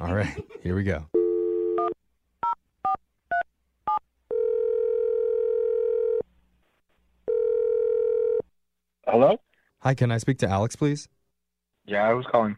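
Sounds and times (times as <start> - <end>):
speech: 0.1 - 1.2, 9.2 - 11.2, 11.9 - 12.5
steady phone line dial tone: 1.2 - 1.9, 4.3 - 6.2, 7.3 - 8.4.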